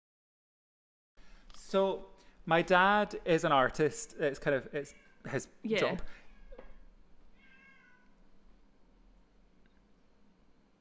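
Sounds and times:
speech: 1.7s - 6.2s
cat meowing in the hallway: 7.4s - 8.2s.

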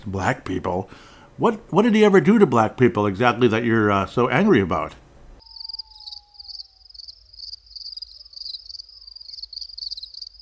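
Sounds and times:
speech: 0.0s - 5.0s
crickets chirping in a high-pitched pulsing trill: 5.4s - 10.4s.

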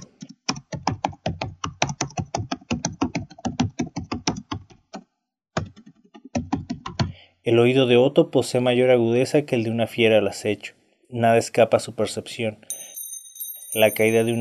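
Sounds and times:
mass keyboard typing in offices: 0.0s - 5.0s, 5.6s - 7.2s
speech: 7.4s - 12.7s, 13.7s - 14.3s.

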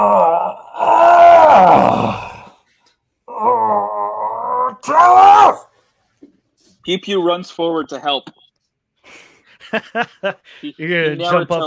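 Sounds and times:
injured person groaning softly inside a ship: 0.0s - 2.6s, 3.3s - 5.5s
speech: 6.9s - 8.4s, 9.7s - 11.6s.

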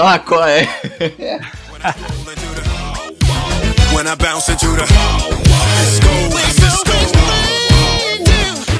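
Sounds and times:
speech: 0.0s - 2.7s, 3.9s - 6.9s
laughter: 0.5s - 2.3s
person howling in imitation of a dog or wolf: 4.2s - 8.7s.

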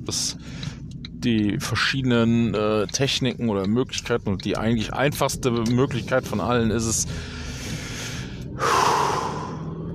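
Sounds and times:
speech: 0.0s - 7.4s
deep breath in and out for a meditation breathing exercise: 7.1s - 9.9s.

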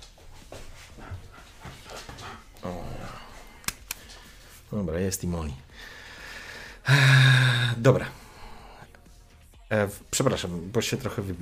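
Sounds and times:
dog panting and whimpering: 0.2s - 3.5s
sharp clicks: 3.6s - 4.2s
speech: 4.7s - 5.7s, 6.9s - 8.2s, 9.7s - 11.4s.

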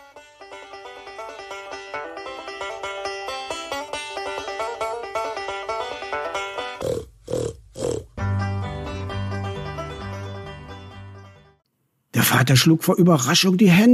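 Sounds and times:
busy steady musical backing: 0.0s - 6.8s, 8.2s - 11.6s
pigs grunting and oinking: 6.8s - 8.2s
speech: 12.2s - 13.9s.

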